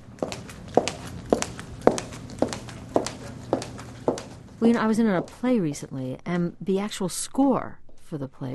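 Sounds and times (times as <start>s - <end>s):
footsteps at a walking pace with crisp heel strikes: 0.0s - 5.5s
speech: 4.6s - 8.5s.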